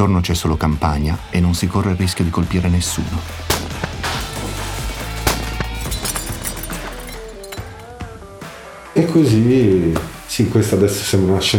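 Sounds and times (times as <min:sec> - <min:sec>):
speech: 0:00.0 - 0:03.8, 0:09.1 - 0:11.5
gunshots: 0:03.5 - 0:04.4
metallic clink or clatter of cans and bottles being hit: 0:04.4 - 0:07.9.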